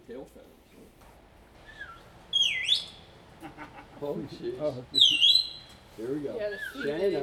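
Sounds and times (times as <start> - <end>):
parrot squawking and whistling: 1.6 - 4.0, 5.0 - 5.8, 6.4 - 7.2.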